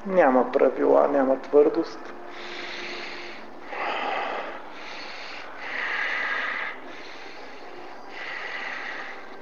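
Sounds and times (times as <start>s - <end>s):
speech: 0.0s - 2.7s
deep slow breathing in and out: 2.2s - 9.4s.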